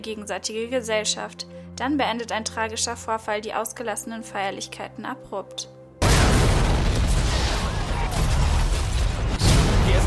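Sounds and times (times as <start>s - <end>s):
speech: 0.0s - 5.8s
explosion roar with booming rumble and crackling: 6.0s - 10.0s.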